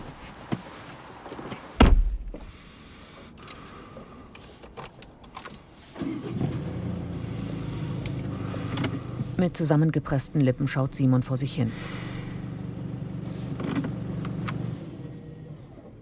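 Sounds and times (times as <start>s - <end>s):
engine-like low rumble: 1.3s - 16.0s
car door slamming as the driver gets in: 1.8s - 2.4s
speech: 9.4s - 12.0s.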